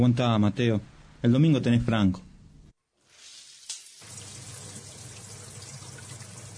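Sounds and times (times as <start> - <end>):
speech: 0.0 - 2.3
shower water running in a steady rush: 3.0 - 6.5
shower click: 3.2 - 4.5.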